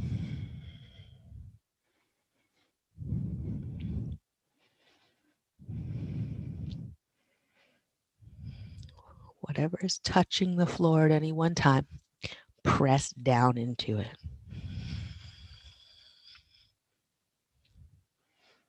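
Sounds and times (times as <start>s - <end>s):
slow deep breathing during a guided stretching exercise: 0.0s - 9.4s, 14.2s - 16.8s, 17.7s - 18.6s
speech: 9.6s - 14.2s.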